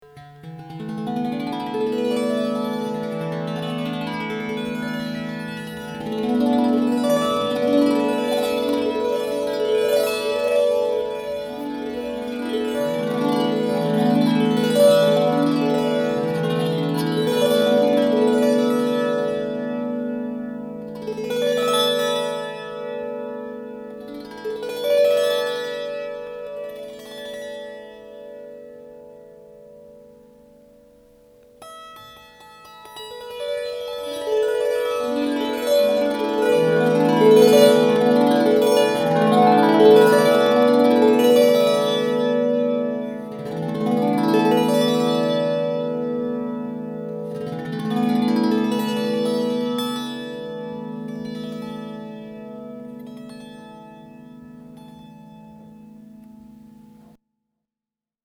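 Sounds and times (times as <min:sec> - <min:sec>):
tenor Tao lyre playing: 0:00.0 - 0:57.1.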